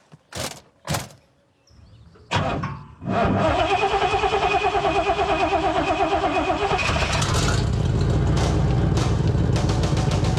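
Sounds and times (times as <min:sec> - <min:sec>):
sharp clunks: 0:00.0 - 0:01.4
old car engine cranking, catching and idling roughly: 0:00.3 - 0:01.2, 0:03.1 - 0:10.3.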